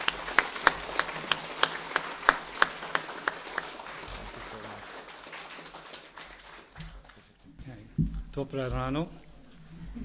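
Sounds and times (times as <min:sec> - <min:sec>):
audience applause for a visiting British team: 0:00.0 - 0:07.4
speech: 0:08.4 - 0:09.3.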